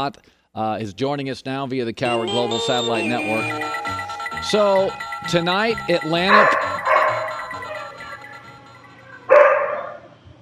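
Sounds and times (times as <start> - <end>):
speech: 0.0 - 6.7
dog barking: 6.3 - 7.8, 9.3 - 10.1.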